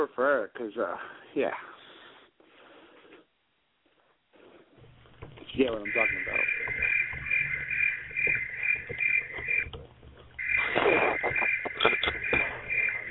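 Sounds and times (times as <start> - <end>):
speech: 0.0 - 1.7, 5.6 - 6.8
faint low rustling: 4.4 - 13.0
chorus of crickets chirping outdoors: 4.9 - 13.0
scattered clicks: 5.0 - 13.0.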